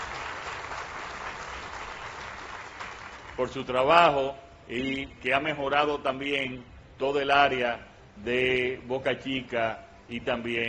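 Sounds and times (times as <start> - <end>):
audience applauding at a public works ceremony: 0.0 - 3.4
speech: 3.4 - 10.6.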